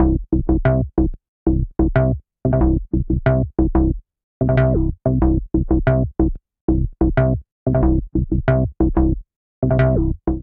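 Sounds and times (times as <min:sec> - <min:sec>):
bassline in C major: 0:00.0 - 0:10.4.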